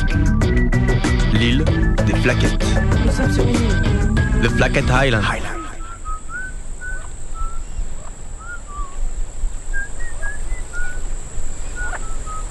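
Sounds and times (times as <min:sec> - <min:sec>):
constant high-pitched drone: 0:00.0 - 0:06.1
elaborate whistling from the interior of an island: 0:00.0 - 0:09.1, 0:09.7 - 0:11.1, 0:11.7 - 0:12.4
speech: 0:02.2 - 0:05.5.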